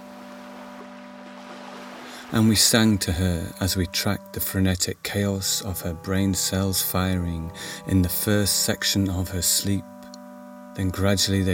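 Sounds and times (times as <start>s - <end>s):
ocean water lapping and gurgling: 0.0s - 3.8s
low sustained humming drone: 0.0s - 11.5s
speech: 2.3s - 10.0s, 10.8s - 11.5s.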